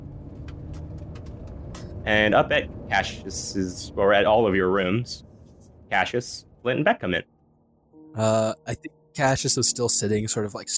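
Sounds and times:
car engine rumbling: 0.0 - 10.7
speech: 2.0 - 5.3, 5.9 - 7.3, 8.2 - 10.7.

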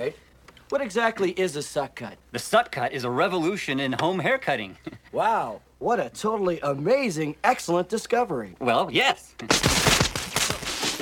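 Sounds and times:
speech: 0.0 - 9.9
rapid crackling bursts: 9.5 - 11.0.

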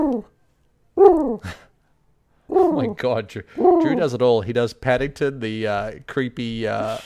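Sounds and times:
human voice imitating a pigeon cooing: 0.0 - 0.4, 1.0 - 1.7, 2.5 - 4.2
speech: 1.0 - 1.6, 2.5 - 7.0.

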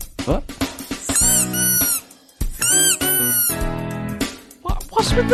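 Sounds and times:
speech: 0.3 - 0.6, 5.0 - 5.3
rubber squeaky toy squeezed: 1.0 - 3.6.

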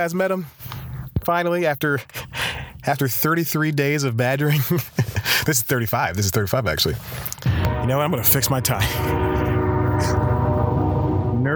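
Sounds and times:
speech: 0.0 - 0.7, 1.3 - 2.2, 2.8 - 7.2, 7.8 - 9.3
laughter: 4.4 - 5.9
low rumbling rail noise: 7.5 - 11.5
train horn blaring: 7.5 - 11.5.

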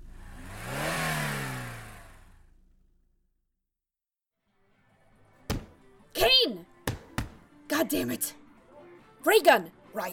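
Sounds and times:
car engine accelerating: 0.0 - 3.1
speech: 7.8 - 8.4, 9.2 - 10.1.

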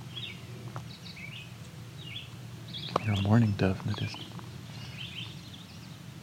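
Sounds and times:
common yellowthroat singing: 0.0 - 6.2
steady low outdoor rumble: 0.0 - 6.2
speech: 3.0 - 4.4.

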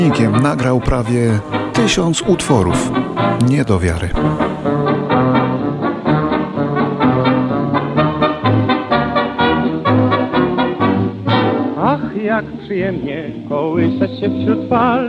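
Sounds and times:
speech: 0.0 - 4.7, 12.4 - 15.0
1930s gramophone record of a pre-war Polish popular song with full band: 0.0 - 15.0.

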